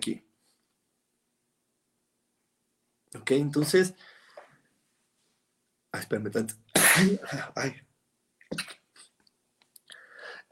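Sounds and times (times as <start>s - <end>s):
speech: 3.1s - 4.1s, 6.0s - 7.8s, 8.5s - 8.8s
explosive sneeze: 6.8s - 7.5s
sharp intake of breath: 10.0s - 10.5s.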